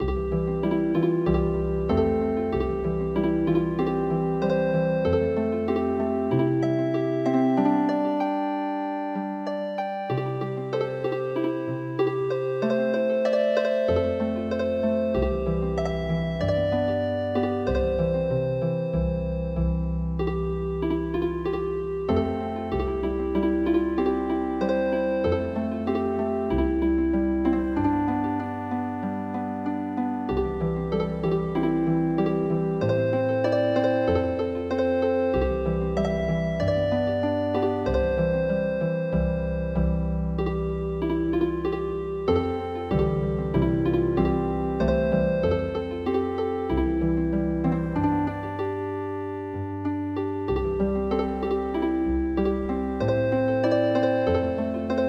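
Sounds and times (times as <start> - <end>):
healing harp music: 0.0 - 55.0.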